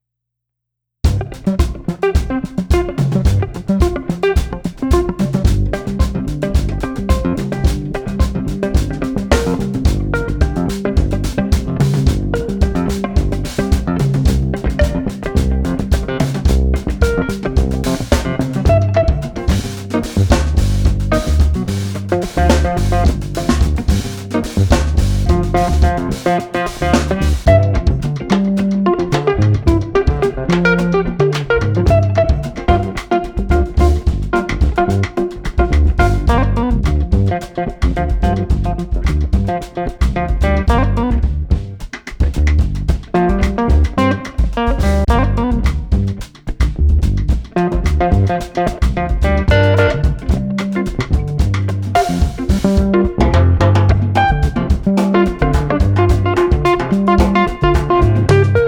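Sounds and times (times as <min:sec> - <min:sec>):
funky guitar combo: 0:01.0 - 0:58.6.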